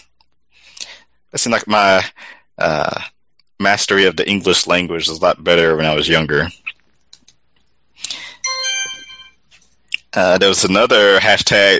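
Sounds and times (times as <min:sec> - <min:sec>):
speech: 0:01.3 - 0:06.6, 0:10.1 - 0:11.7
faint clicks: 0:06.7 - 0:08.2
phone notification chime: 0:08.4 - 0:09.4.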